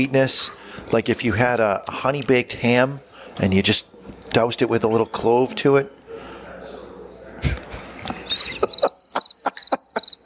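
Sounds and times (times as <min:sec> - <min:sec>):
speech: 0:00.0 - 0:06.0
laughter: 0:07.4 - 0:10.2
crickets chirping in a high-pitched trill: 0:08.6 - 0:10.2.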